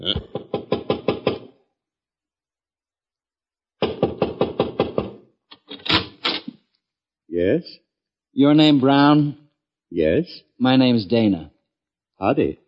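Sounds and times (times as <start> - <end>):
speech: 0.0 - 0.3, 7.4 - 7.8, 8.4 - 11.5, 12.2 - 12.6
rapid knocking on a wooden door: 0.2 - 1.5, 3.8 - 5.2.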